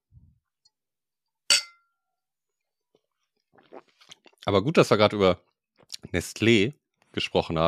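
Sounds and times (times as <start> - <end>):
glasses clinking in a toast: 1.5 - 1.9
speech: 3.6 - 7.6.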